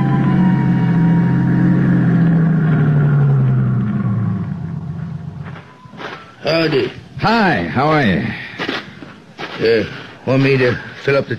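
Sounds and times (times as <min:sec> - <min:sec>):
car engine droning while driving up a mountain road: 0:00.0 - 0:07.1
speech: 0:06.6 - 0:08.4, 0:09.6 - 0:11.3.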